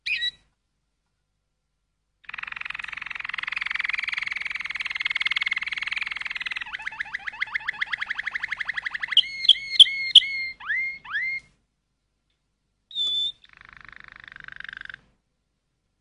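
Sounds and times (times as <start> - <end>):
canary singing: 0.0 - 0.5, 2.2 - 11.5, 12.9 - 15.1.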